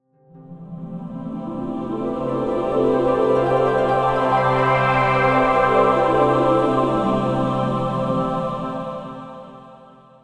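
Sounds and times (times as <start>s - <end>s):
cartoon dreamy heavenly choir singing: 0.6s - 10.2s
cartoon dreamy heavenly harp glissando: 2.2s - 6.8s.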